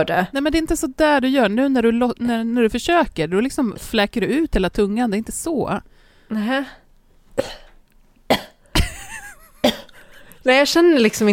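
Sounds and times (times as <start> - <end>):
speech: 0.0 - 6.8, 7.4 - 7.6, 10.4 - 11.3
sharp coughs: 7.4 - 9.0, 9.6 - 10.2.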